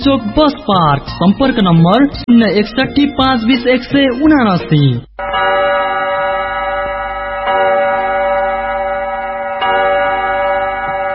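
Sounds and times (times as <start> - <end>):
speech: 0.0 - 5.5
radio studio clock time signal chime tones: 5.2 - 11.1.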